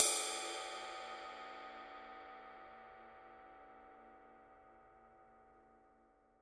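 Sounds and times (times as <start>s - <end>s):
Dark Energy ride cymbal Mark I body: 0.0s - 3.0s.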